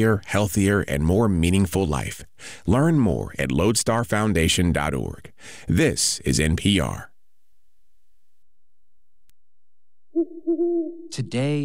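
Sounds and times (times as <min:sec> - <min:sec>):
speech: 0:00.0 - 0:07.1, 0:10.2 - 0:11.6
owl hooting: 0:10.1 - 0:11.6.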